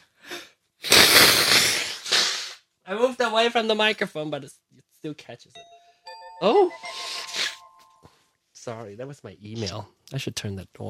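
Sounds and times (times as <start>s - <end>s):
person blowing their nose: 0.2s - 2.7s, 6.8s - 7.8s
speech: 2.9s - 5.7s, 6.4s - 7.1s, 8.6s - 10.8s.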